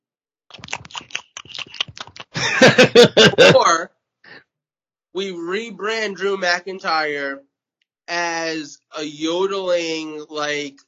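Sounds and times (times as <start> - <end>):
person chewing food: 0.5 - 2.4
laughter: 2.3 - 3.8
speech: 2.6 - 3.9, 5.2 - 7.5, 8.1 - 10.8.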